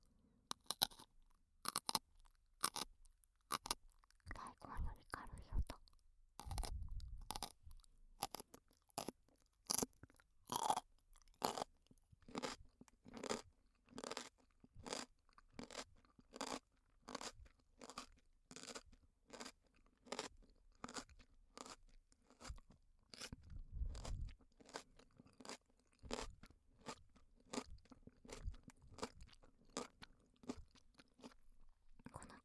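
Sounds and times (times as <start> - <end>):
crunchy eating of raw cucumber: 0.5 - 32.3.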